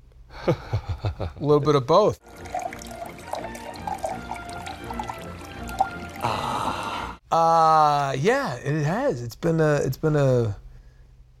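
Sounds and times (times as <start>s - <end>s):
speech: 0.4s - 2.5s, 7.3s - 10.6s
Guinness beer pouring into a glass: 2.2s - 6.9s.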